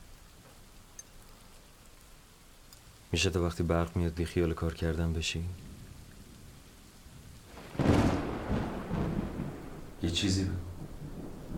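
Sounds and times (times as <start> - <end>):
steady rainfall: 0.0 - 11.5
speech: 3.1 - 5.7, 10.1 - 10.7
thunder rumbling: 5.2 - 11.5.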